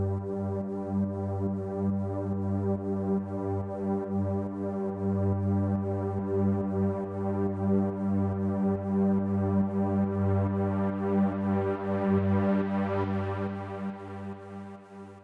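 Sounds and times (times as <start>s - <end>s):
synth pad intro in G minor: 0.1s - 15.2s.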